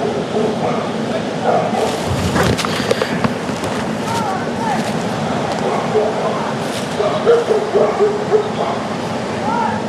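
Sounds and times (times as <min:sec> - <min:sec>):
dogs barking at a spin fisherman: 0:00.0 - 0:03.3, 0:05.4 - 0:09.1
outdoor noise: 0:00.0 - 0:09.8.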